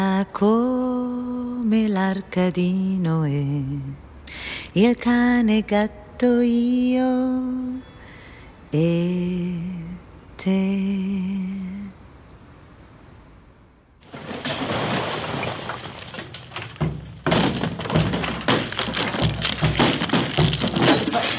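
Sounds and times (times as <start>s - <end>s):
speech: 0.2s - 7.9s, 8.7s - 9.8s, 10.4s - 11.7s
wall cracking with dense crackling and crunching: 14.0s - 21.3s.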